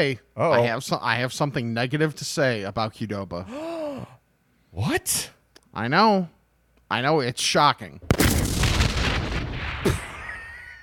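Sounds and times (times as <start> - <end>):
speech: 0.0 - 4.1, 4.8 - 8.2, 9.8 - 10.1
explosion sound effect with gunshot-like crack: 8.0 - 10.4.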